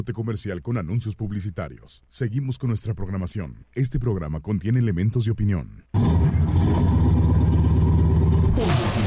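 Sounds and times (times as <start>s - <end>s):
speech: 0.0s - 6.8s
car engine started with the key and revving: 6.0s - 9.0s.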